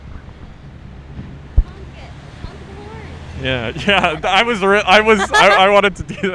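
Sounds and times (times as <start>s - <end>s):
large truck driving past: 0.1s - 5.1s
people talking loudly: 2.8s - 5.9s
speech: 3.4s - 6.3s
laughter: 5.0s - 6.3s.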